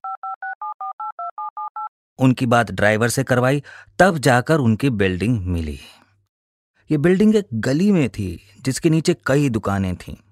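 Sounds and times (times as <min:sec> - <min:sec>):
touch-tone beeps of a phone number being dialed: 0:00.0 - 0:01.9
speech: 0:02.2 - 0:06.0, 0:06.9 - 0:10.2.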